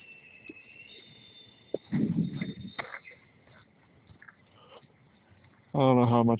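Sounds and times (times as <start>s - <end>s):
GE wind turbine mechanical whine: 0.0s - 4.1s
speech: 5.8s - 6.3s.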